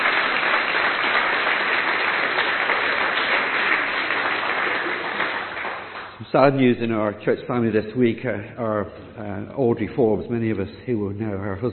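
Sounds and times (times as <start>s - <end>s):
audience applauding in a church: 0.0s - 6.2s
speech: 6.3s - 11.7s.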